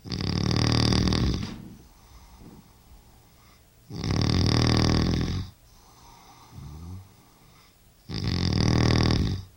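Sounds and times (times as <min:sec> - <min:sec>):
man snoring loudly while asleep in his bedroom: 0:00.0 - 0:01.6, 0:03.9 - 0:05.5, 0:06.2 - 0:07.2, 0:08.1 - 0:09.5.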